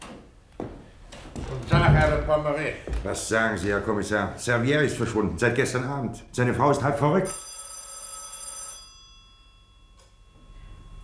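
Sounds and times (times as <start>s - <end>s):
speech: 1.5s - 7.5s
old-fashioned telephone bell ringing: 7.2s - 11.0s.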